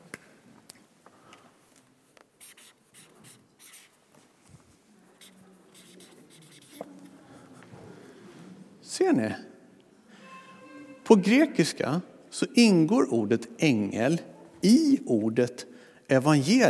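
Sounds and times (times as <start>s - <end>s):
pen scratching across a board or paper: 2.4s - 3.9s, 5.2s - 6.9s
speech: 9.0s - 9.5s, 11.1s - 16.6s.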